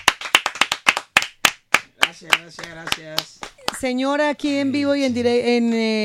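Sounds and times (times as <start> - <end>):
small group of people clapping: 0.0 - 4.0
speech: 2.1 - 6.0.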